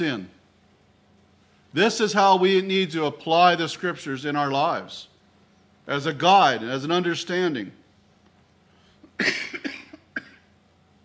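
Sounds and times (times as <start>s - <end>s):
speech: 0.0s - 0.4s, 1.7s - 5.1s, 5.9s - 7.8s, 9.2s - 9.7s
person coughing from a tickle in the throat: 9.0s - 10.6s.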